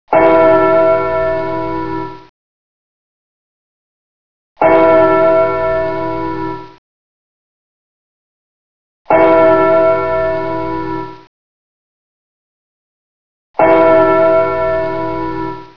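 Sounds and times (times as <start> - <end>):
church bell: 0.1 - 2.3, 4.6 - 6.8, 9.1 - 11.3, 13.6 - 15.7.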